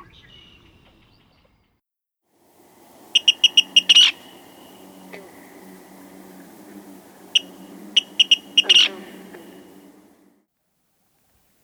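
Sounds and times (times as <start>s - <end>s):
Virginia Rail calling: 2.4s - 10.4s.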